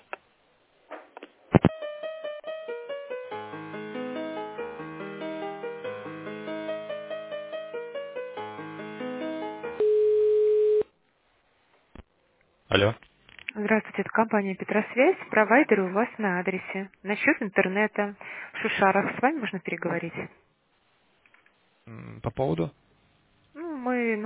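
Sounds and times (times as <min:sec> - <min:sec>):
telephone line tones while a call is transferred: 0:08.5 - 0:10.9
speech: 0:12.8 - 0:13.0, 0:13.6 - 0:20.4, 0:22.3 - 0:22.8, 0:23.8 - 0:24.2.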